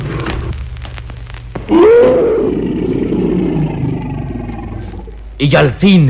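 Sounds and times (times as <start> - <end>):
sharp crackles: 0.0 - 6.0
tiger's choked dying roar: 1.7 - 5.2
speech: 5.4 - 6.0.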